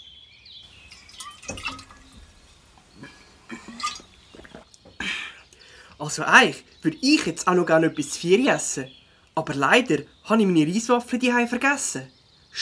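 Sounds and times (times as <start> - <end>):
sipping water from a drinking bottle: 0.7 - 4.6
swallowing: 0.7 - 4.6
speech: 6.0 - 12.6.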